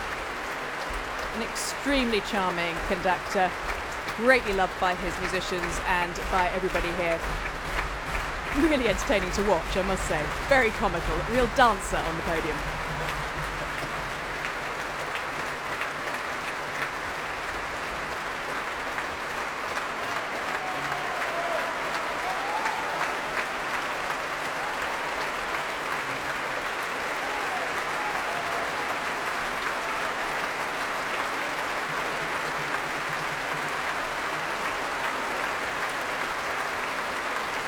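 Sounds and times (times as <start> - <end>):
large audience applause and cheers at a classical concert: 0.0 - 37.6
speech: 1.4 - 7.6, 8.6 - 12.8
faint whoops: 20.4 - 23.3.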